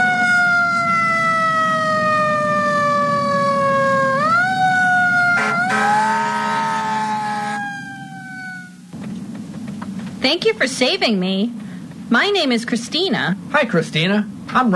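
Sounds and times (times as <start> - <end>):
ambulance siren: 0.0 - 8.9
speech: 10.3 - 14.7.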